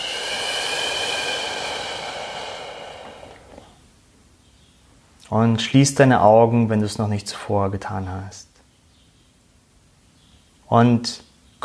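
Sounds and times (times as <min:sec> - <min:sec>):
slow deep exhale during guided group breathing meditation: 0:00.0 - 0:03.8
speech: 0:05.3 - 0:08.5, 0:10.7 - 0:11.6.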